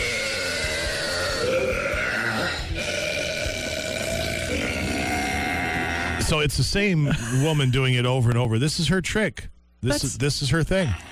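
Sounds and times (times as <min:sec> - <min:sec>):
long extremely loud human burp: 0:00.0 - 0:06.3
speech: 0:06.3 - 0:11.1.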